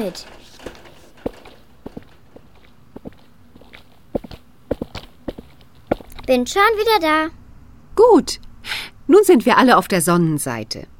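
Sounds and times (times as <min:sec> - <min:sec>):
speech: 0:00.0 - 0:00.4, 0:06.3 - 0:07.4, 0:08.0 - 0:08.4, 0:09.1 - 0:10.9
footsteps walking across to fetch a glass of water: 0:00.3 - 0:06.9.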